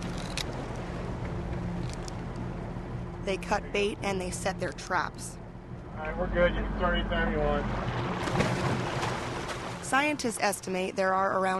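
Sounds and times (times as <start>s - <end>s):
motorboat engine droning on Lake Tahoe: 0.0s - 11.5s
speech: 3.3s - 5.4s, 6.0s - 8.5s, 9.9s - 11.5s
wash of water on Lake Tahoe: 7.4s - 10.6s.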